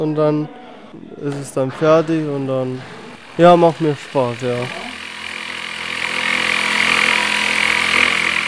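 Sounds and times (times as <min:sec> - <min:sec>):
speech: 0:00.0 - 0:04.9
jigsaw cutting through a board for a changing cubicle: 0:02.2 - 0:08.4.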